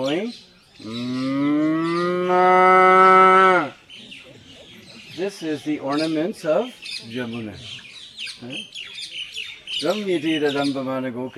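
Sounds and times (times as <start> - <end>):
speech: 0.0 - 2.6, 5.3 - 8.9, 9.8 - 11.3
cow mooing: 0.8 - 3.8.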